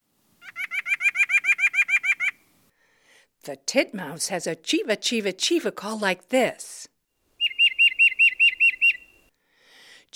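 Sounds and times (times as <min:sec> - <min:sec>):
nuthatch nasal yank call: 0:00.4 - 0:02.5, 0:07.4 - 0:09.3
speech: 0:03.4 - 0:06.9.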